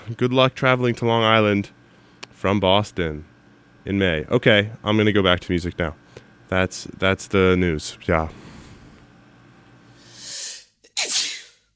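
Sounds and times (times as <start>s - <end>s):
faint hum: 0.0s - 11.7s
speech: 0.1s - 1.8s, 2.4s - 8.4s
person sneezing: 10.2s - 11.7s.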